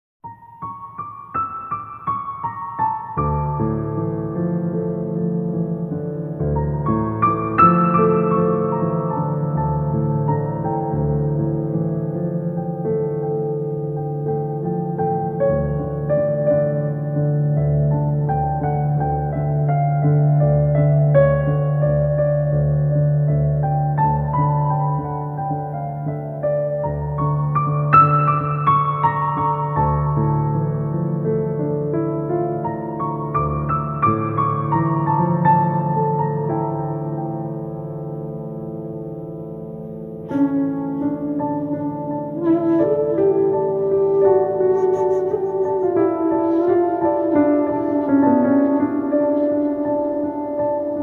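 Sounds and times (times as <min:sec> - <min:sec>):
piano theme: 0:00.2 - 0:51.0.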